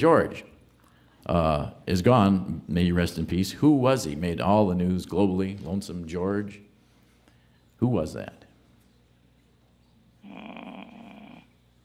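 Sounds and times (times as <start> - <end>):
speech: 0.0 - 0.5, 1.2 - 6.6, 7.8 - 8.4
quiet hiss: 0.0 - 11.8
low raspy groan resembling a light snore: 10.2 - 11.5.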